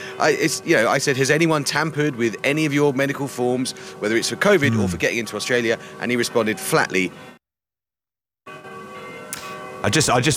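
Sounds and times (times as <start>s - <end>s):
speech: 0.2s - 7.4s, 9.8s - 10.3s
old bells chiming in Belgrade: 8.5s - 10.3s.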